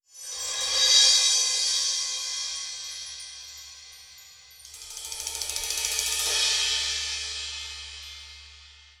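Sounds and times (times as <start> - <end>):
cymbal roll: 0.3 - 8.9.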